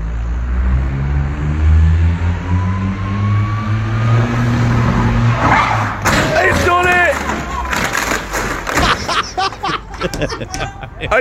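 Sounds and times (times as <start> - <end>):
small smart car engine droning and revving: 0.4 - 6.0
tire screech as car skids through a J-turn: 0.9 - 9.1
laughter: 8.0 - 11.1.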